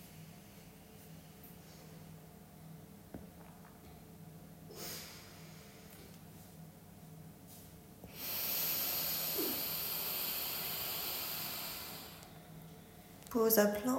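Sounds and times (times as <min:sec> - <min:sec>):
long steady exhale during a guided breathing exercise: 0:04.7 - 0:06.1, 0:08.1 - 0:12.4
speech: 0:13.4 - 0:13.9.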